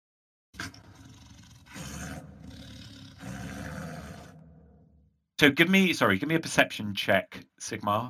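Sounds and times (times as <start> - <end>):
deep rumbling wolf growls: 0.6 - 5.1
speech: 5.4 - 8.0.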